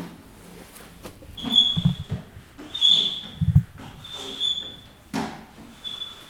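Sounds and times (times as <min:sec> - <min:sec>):
windshield wiper squeaking across glass: 0:01.3 - 0:04.8.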